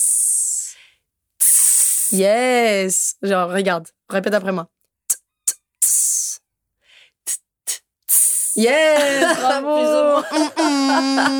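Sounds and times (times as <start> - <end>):
beatbox hissing S sounds imitating an open hi-hat: 0.0 - 0.7, 1.4 - 2.2, 5.1 - 6.4, 7.3 - 8.6
speech: 2.1 - 4.8, 8.6 - 11.3
laughter: 8.6 - 11.3.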